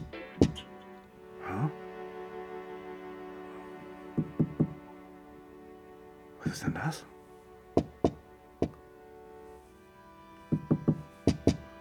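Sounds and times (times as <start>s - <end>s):
knocking on a hollow-sounding surface: 4.2s - 4.8s, 7.8s - 8.8s, 10.6s - 11.6s
speech: 6.5s - 7.1s.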